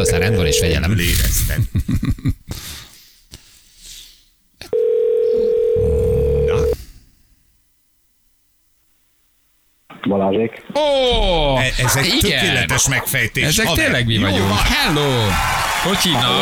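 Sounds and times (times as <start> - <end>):
speech: 0.0 - 2.0, 10.1 - 16.4
laughter: 0.9 - 2.8, 11.0 - 16.4
telephone ringback tone while calling a listener: 4.7 - 6.8.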